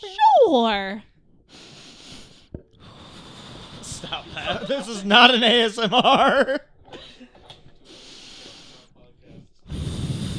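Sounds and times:
speech: 0.0s - 1.1s, 4.0s - 6.7s
person heavy breathing while vaping: 1.3s - 4.9s, 6.8s - 10.3s
laughter: 3.7s - 9.1s.

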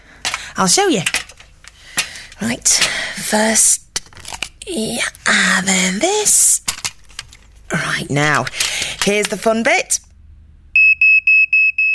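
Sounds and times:
speech: 0.6s - 1.2s, 2.4s - 3.8s, 4.7s - 6.7s, 7.7s - 10.1s
smoke alarm beeping: 10.8s - 11.9s.

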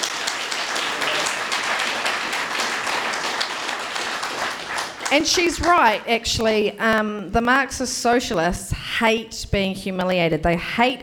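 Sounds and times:
dense crowd applause: 0.0s - 6.0s
speech: 5.1s - 11.0s.

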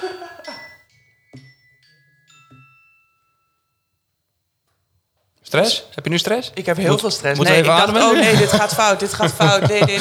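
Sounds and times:
doorbell chiming: 0.0s - 4.1s
speech: 5.5s - 10.0s
laughter: 6.6s - 10.0s.

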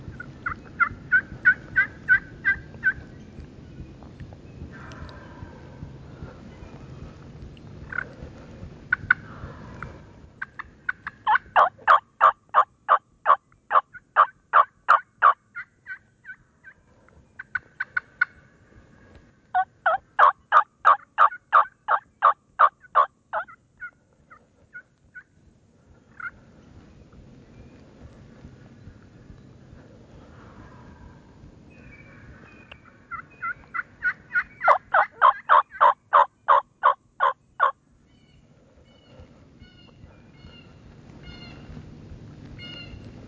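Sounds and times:
wild turkeys gobbling in thick cover: 0.0s - 3.1s, 7.8s - 8.2s, 8.9s - 16.8s, 17.4s - 18.4s, 19.6s - 25.3s, 26.0s - 26.4s, 32.0s - 41.8s
faint low rumble: 0.0s - 43.2s.

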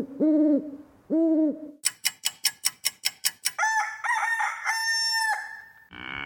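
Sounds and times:
low owl-like hoots in a morning birdsong effect: 0.0s - 1.8s
loud drawn-out rooster crow: 3.6s - 5.8s.

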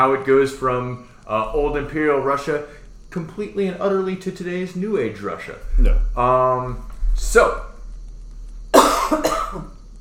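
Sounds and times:
speech: 0.0s - 7.7s, 9.1s - 9.7s
harsh coughs: 8.8s - 9.8s.

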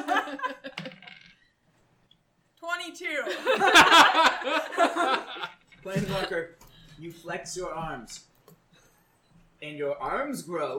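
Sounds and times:
laughter: 0.0s - 1.0s, 3.2s - 6.4s
dice rolling across a hard tabletop: 0.8s - 1.4s
speech: 2.9s - 5.2s, 5.9s - 8.3s, 9.6s - 10.7s.

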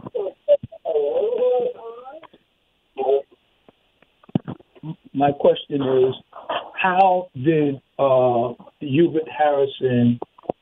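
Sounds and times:
radio playing at a caller's end of a phone line: 0.0s - 2.3s, 3.0s - 3.2s, 4.2s - 10.6s
speech: 5.2s - 6.2s, 6.8s - 10.2s.

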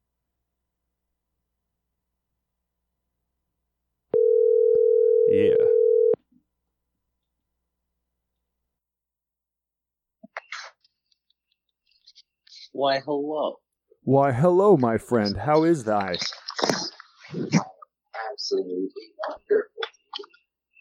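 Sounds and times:
phone ringing tone over a speakerphone: 4.2s - 6.2s
speech: 12.8s - 17.5s, 18.5s - 19.7s.

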